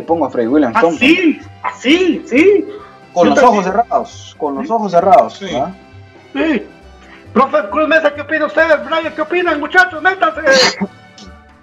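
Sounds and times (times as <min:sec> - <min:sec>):
speech: 0:00.0 - 0:11.0
person sneezing: 0:10.4 - 0:10.9.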